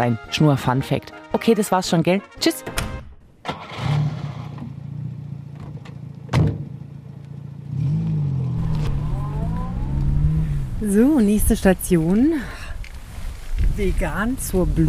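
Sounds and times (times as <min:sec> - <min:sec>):
speech: 0:00.0 - 0:02.9, 0:10.8 - 0:12.6, 0:13.8 - 0:14.8
car engine starting and running as the car drives down a hill in Kandern: 0:03.3 - 0:12.1
car door thudding shut: 0:05.6 - 0:06.7.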